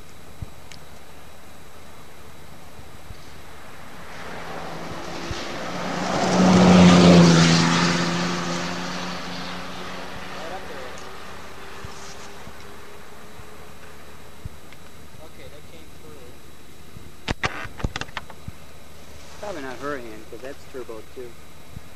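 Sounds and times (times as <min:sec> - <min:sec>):
turbocharged propeller plane engine drone: 0:00.0 - 0:21.9
faint clicks: 0:14.7 - 0:15.0.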